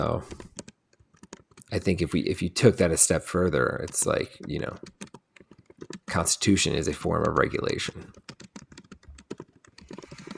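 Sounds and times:
speech: 0.0s - 0.5s, 1.7s - 5.0s, 6.1s - 8.3s
typing on a computer keyboard into a chat: 0.2s - 1.7s, 3.6s - 10.3s.

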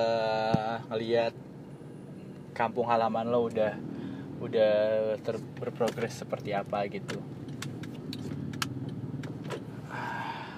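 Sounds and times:
car engine and road rumble heard from inside while driving: 0.0s - 10.5s
speech: 0.9s - 1.5s, 2.6s - 7.4s
light clicks and rattles in car interior: 5.2s - 9.6s.

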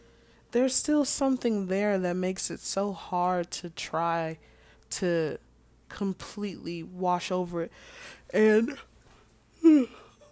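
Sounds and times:
speech: 0.5s - 8.9s, 9.6s - 10.0s
person yawning: 9.6s - 10.1s.

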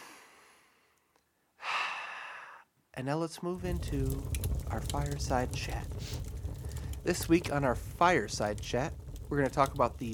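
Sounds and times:
person taking a big breath: 1.6s - 2.7s
speech: 3.0s - 6.4s, 7.0s - 10.1s.

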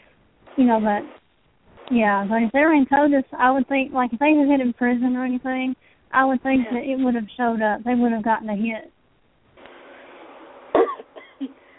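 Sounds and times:
speech: 0.6s - 1.2s, 1.9s - 8.9s
person coughing: 10.8s - 11.6s.

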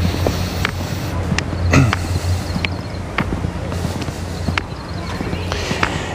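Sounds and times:
trucks rumbling on a highway down below: 0.0s - 6.1s.

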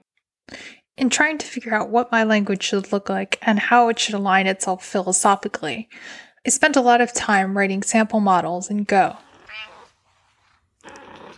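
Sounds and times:
speech: 1.0s - 9.7s
cat meowing: 9.2s - 10.0s.

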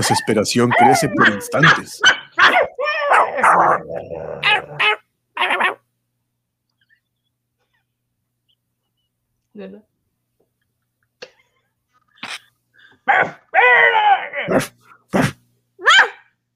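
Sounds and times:
speech: 0.0s - 2.2s, 9.6s - 9.9s, 13.1s - 14.8s
several dogs barking loudly: 0.0s - 5.8s, 13.1s - 14.7s, 15.8s - 16.3s.

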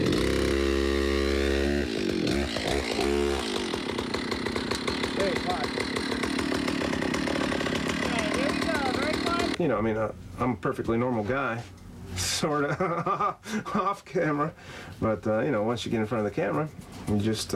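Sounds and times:
chainsaw engine idling and revving: 0.0s - 9.6s
speech: 9.7s - 11.8s, 12.4s - 17.5s
laughter: 12.3s - 14.0s.

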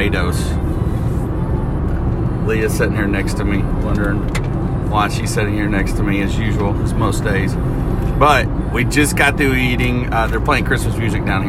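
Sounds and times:
low rumble of road noise inside a moving car: 0.0s - 11.4s
speech: 0.1s - 0.7s, 2.5s - 11.4s.

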